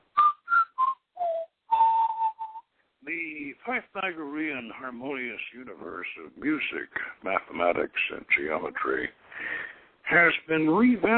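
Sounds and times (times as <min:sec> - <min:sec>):
person whistling a short five-note film motif: 0:00.1 - 0:02.7
speech: 0:03.1 - 0:09.2, 0:10.1 - 0:11.1.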